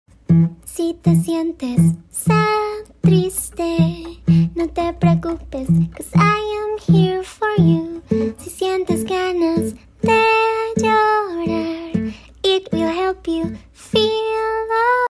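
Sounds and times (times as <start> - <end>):
sing-along learning song: 0.3 - 15.0.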